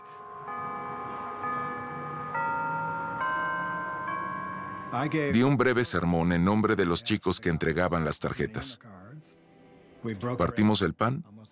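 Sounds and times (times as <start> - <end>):
church bells ringing a slow hymn melody: 0.0 - 6.0
speech: 4.9 - 9.4, 10.0 - 11.4.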